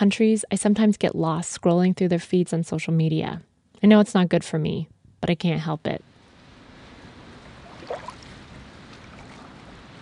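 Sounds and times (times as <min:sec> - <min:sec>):
speech: 0:00.0 - 0:06.1
boats passing on the water: 0:06.1 - 0:10.0.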